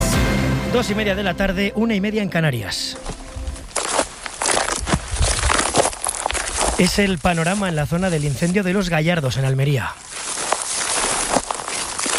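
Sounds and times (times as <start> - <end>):
speech: 0.7 - 3.2, 6.8 - 10.2
footsteps crunching over burnt dry sticks and brittle branches: 2.4 - 12.1.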